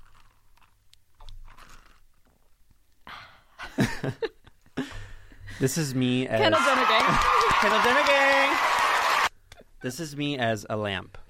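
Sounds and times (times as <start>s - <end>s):
person sipping water: 0.0s - 2.2s
speech: 3.8s - 4.3s, 5.6s - 8.7s, 9.8s - 11.2s.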